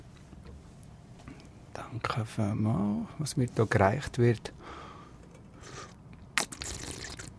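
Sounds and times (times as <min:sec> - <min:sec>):
speech: 0:01.9 - 0:04.6
tea being poured into a cup: 0:06.4 - 0:07.3.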